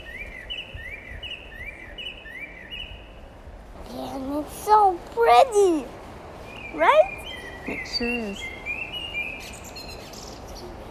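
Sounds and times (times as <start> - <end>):
blackbird singing: 0.0 - 3.2, 6.4 - 10.8
hiss: 0.0 - 10.8
speech: 5.2 - 6.0, 6.7 - 8.5.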